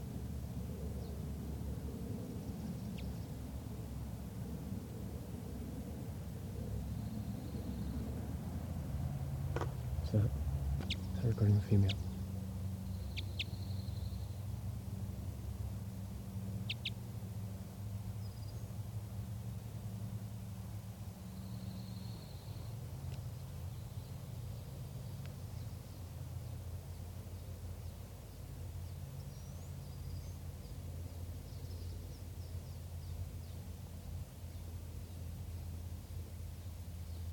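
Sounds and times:
steady low outdoor rumble: 0:00.0 - 0:37.3
speech: 0:10.1 - 0:10.4, 0:11.4 - 0:12.1
wild bird giving sharp alarm calls: 0:10.8 - 0:12.3, 0:12.9 - 0:14.1, 0:16.6 - 0:17.0.

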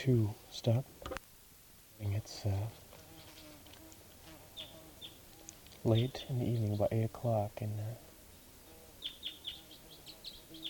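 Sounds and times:
speech: 0:00.0 - 0:01.0, 0:02.0 - 0:02.8, 0:05.8 - 0:08.1
bird calling in the late evening: 0:02.3 - 0:10.6.

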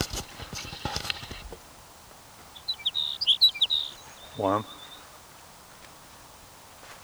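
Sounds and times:
sage sparrow singing: 0:00.0 - 0:05.4
low noise: 0:00.0 - 0:07.0
speech: 0:04.4 - 0:04.8.

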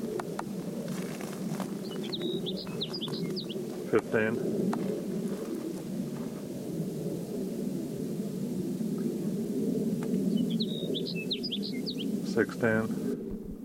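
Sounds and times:
low rumble: 0:00.0 - 0:13.6
sage sparrow chirping: 0:00.9 - 0:04.3, 0:10.2 - 0:12.4
speech: 0:03.9 - 0:05.0, 0:12.4 - 0:13.0.

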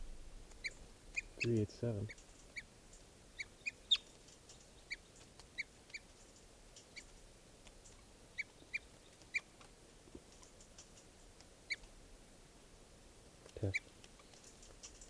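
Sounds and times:
low rustling bumps: 0:00.0 - 0:00.5
small birds giving alarm calls at a hawk: 0:00.5 - 0:12.0, 0:13.5 - 0:15.0.

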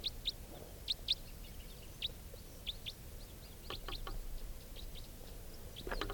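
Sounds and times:
wild songbird chirping and whistling: 0:00.0 - 0:06.1.

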